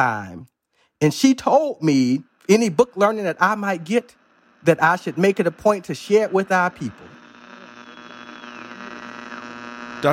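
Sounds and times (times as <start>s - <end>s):
speech: 0.0s - 7.2s
steady electrical interference hum on the line: 1.0s - 10.1s
faint whistling tones sliding up and down: 7.8s - 8.9s.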